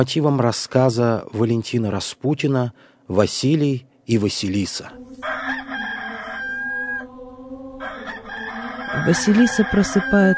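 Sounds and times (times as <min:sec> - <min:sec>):
speech: 0:00.0 - 0:05.3, 0:09.0 - 0:10.3
rooster crowing: 0:05.2 - 0:10.3.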